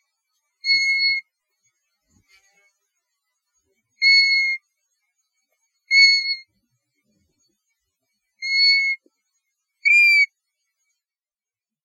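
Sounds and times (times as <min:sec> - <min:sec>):
European golden plover Pluvialis apricaria soft melancholy whistles: 0:00.6 - 0:01.2, 0:04.0 - 0:04.6, 0:05.9 - 0:06.5, 0:08.4 - 0:09.0, 0:09.8 - 0:10.3.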